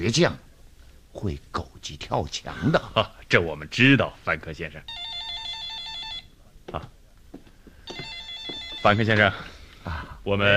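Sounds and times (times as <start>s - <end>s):
speech: 0.0s - 0.5s, 1.2s - 5.1s, 6.7s - 7.0s, 8.8s - 10.5s
telephone ringing with an electronic trill: 4.9s - 6.4s, 7.9s - 9.5s.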